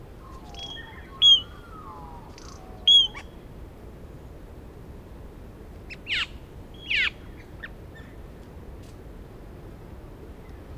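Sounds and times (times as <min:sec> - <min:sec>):
Australasian figbird sharp whistled notes: 0:00.2 - 0:03.2.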